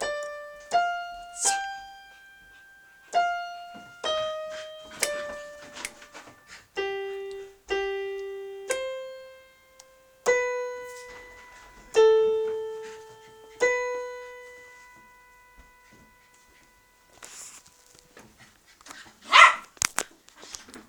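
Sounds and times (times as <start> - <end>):
rustling: 0.0 - 20.8
hyperactive dog barking: 19.2 - 19.7.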